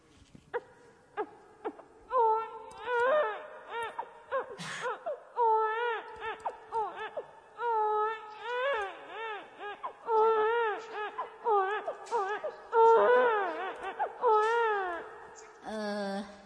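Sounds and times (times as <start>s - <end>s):
voice imitating a newborn baby boy crying: 1.2s - 15.2s.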